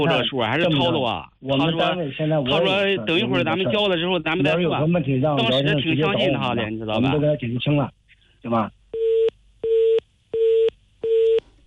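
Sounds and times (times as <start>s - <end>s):
speech: 0.0s - 8.8s
telephone busy signal after a call hung up: 9.0s - 11.6s.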